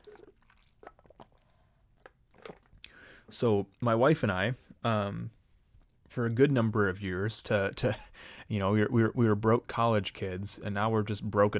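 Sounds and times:
person sipping water: 0:00.0 - 0:03.3
speech: 0:03.3 - 0:05.4, 0:06.1 - 0:11.5.

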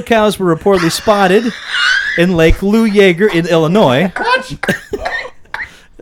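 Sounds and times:
speech: 0:00.0 - 0:04.8
harsh coughs close to a microphone: 0:04.1 - 0:05.9.

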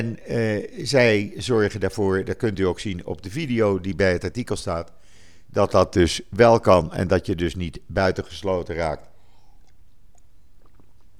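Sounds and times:
faint swallowing: 0:00.0 - 0:03.2, 0:07.8 - 0:11.1
speech: 0:00.0 - 0:09.1
low steady hum: 0:00.0 - 0:11.1
wet mouth clicks of someone sipping water in hot weather: 0:09.0 - 0:11.1.

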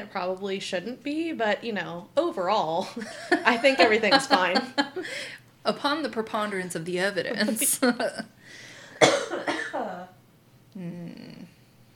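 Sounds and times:
speech: 0:00.0 - 0:09.4
laughter: 0:02.9 - 0:05.2
harsh coughs: 0:09.0 - 0:10.0.

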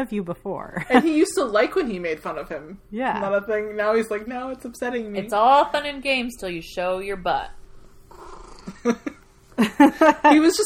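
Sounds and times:
speech: 0:00.0 - 0:10.6
cat grumbling: 0:08.1 - 0:09.0.

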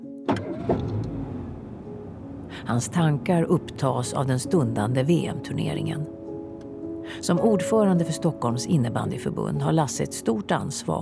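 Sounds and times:
car engine started with key, cranking and idling while warming up: 0:00.1 - 0:04.2
speech: 0:00.7 - 0:01.0, 0:02.6 - 0:06.2, 0:07.1 - 0:11.0.

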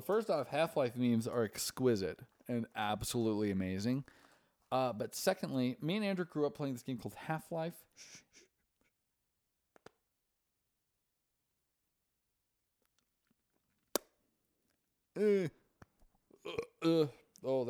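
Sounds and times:
speech: 0:00.0 - 0:08.5, 0:15.2 - 0:15.6, 0:16.5 - 0:17.6
forced burp: 0:15.2 - 0:15.6, 0:16.4 - 0:17.3
faint clicks and small mouth noises: 0:15.2 - 0:17.5.

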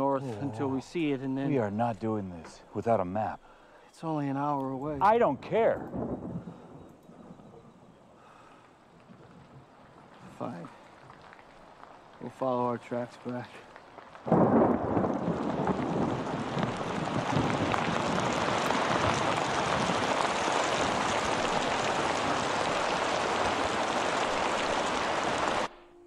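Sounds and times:
speech: 0:00.2 - 0:06.4, 0:12.2 - 0:14.4
deep rumble of thunder: 0:04.8 - 0:12.4, 0:14.1 - 0:25.8
heavy rain pouring down: 0:05.0 - 0:25.7.

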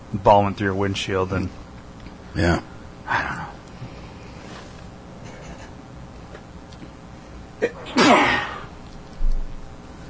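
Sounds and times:
speech: 0:00.1 - 0:01.6, 0:02.3 - 0:03.4
person sneezing: 0:07.6 - 0:08.7.

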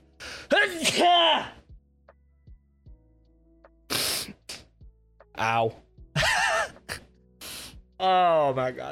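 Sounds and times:
speech: 0:00.6 - 0:01.6, 0:05.4 - 0:05.8, 0:08.0 - 0:08.9
person sneezing: 0:03.9 - 0:04.7.

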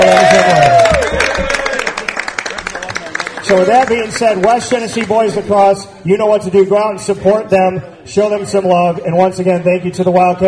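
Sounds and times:
dense rapid clapping and whoops: 0:00.0 - 0:04.0
crowd cheering for parents and alumni at a boys lacrosse event: 0:00.0 - 0:05.1
speech: 0:03.5 - 0:10.4.

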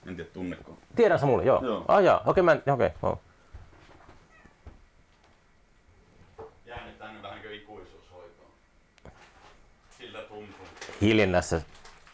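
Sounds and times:
room noise: 0:00.0 - 0:12.1
speech: 0:00.4 - 0:03.3, 0:10.4 - 0:11.8
cat meowing: 0:04.2 - 0:04.8.

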